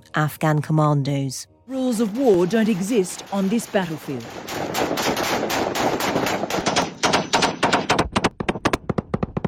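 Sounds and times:
speech: 0.2s - 5.4s
automatic gunfire from fighters executing commandos: 2.1s - 8.8s.

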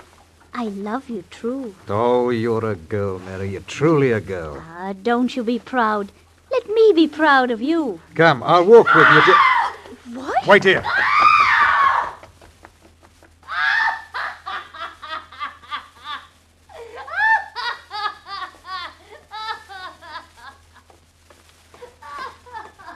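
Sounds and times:
faint steady low hum: 0.0s - 22.9s
speech: 0.6s - 6.2s, 6.9s - 9.5s, 10.1s - 11.2s
woman screaming in an alley: 8.8s - 12.2s, 13.5s - 14.4s, 16.8s - 17.6s.

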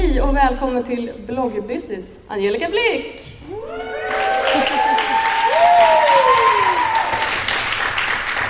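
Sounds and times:
speech: 0.2s - 4.1s
people cheering and whooping: 3.5s - 7.4s
live crowd applauding: 3.7s - 8.4s
laughter: 4.2s - 5.5s.

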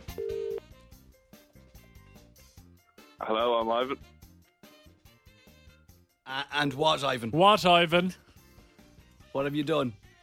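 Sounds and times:
single short electronic phone ring tone: 0.0s - 0.6s
upbeat music: 0.0s - 10.2s
speech: 3.2s - 4.2s, 6.3s - 8.2s, 9.4s - 10.0s.

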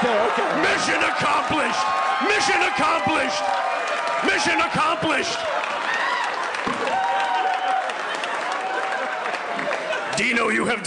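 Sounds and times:
live crowd clapping: 0.0s - 10.6s
speech: 0.1s - 5.8s, 10.2s - 10.8s.

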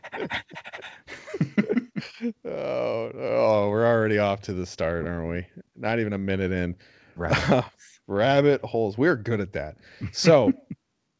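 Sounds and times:
person imitating a panting dog: 0.0s - 2.3s
laughter: 0.0s - 3.9s, 7.2s - 7.7s, 10.0s - 10.8s
speech: 0.2s - 0.6s, 4.1s - 10.6s.

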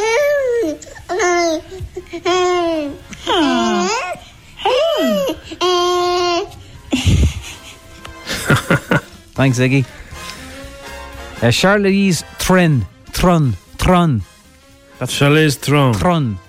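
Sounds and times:
baby boy babbling and making noises: 0.0s - 6.5s
laughter: 6.9s - 9.2s
speech: 9.4s - 10.0s, 11.4s - 14.3s, 15.0s - 16.4s.

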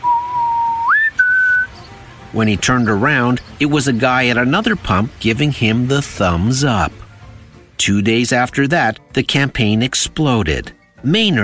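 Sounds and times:
three-note human whistle: 0.0s - 1.8s
speech: 2.3s - 7.0s, 7.8s - 11.4s.

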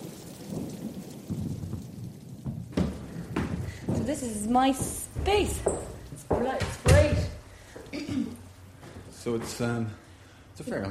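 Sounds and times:
low rumbling gusts: 0.0s - 7.6s
heavy rain pouring outdoors: 0.0s - 10.8s
sharper thuds and splashes: 0.5s - 7.4s
speech: 4.0s - 7.1s, 9.2s - 10.0s, 10.6s - 10.8s.

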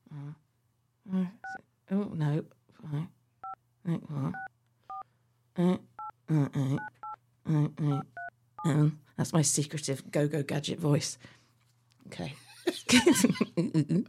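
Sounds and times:
speech: 1.1s - 3.2s, 3.9s - 4.5s, 5.6s - 6.9s, 7.5s - 11.4s, 12.9s - 14.0s
two-toned keypad beeps of a burner phone being dialed: 4.4s - 5.0s, 6.8s - 7.2s.

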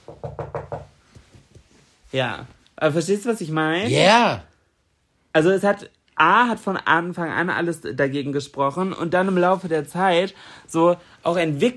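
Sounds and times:
knocking on a wooden surface: 0.0s - 1.6s
speech: 2.1s - 4.5s, 5.3s - 11.7s.

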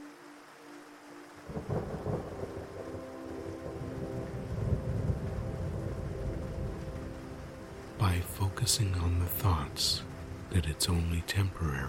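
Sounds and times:
heavy rain pouring during a storm at sea: 0.0s - 11.8s
deep rolling thunder during a storm at sea: 3.8s - 6.9s
speech: 8.0s - 11.8s.

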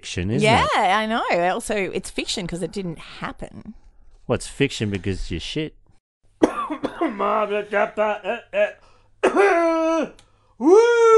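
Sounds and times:
speech: 0.0s - 5.8s, 6.7s - 11.1s
person vocally imitating a cough: 6.4s - 7.4s, 8.3s - 10.1s.

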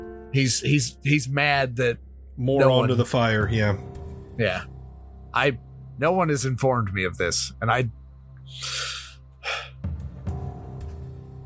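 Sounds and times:
speech: 0.3s - 4.7s, 5.3s - 8.9s
man taking a short breath: 8.6s - 9.7s
irritated man taking a sharp gasp: 8.6s - 9.8s.

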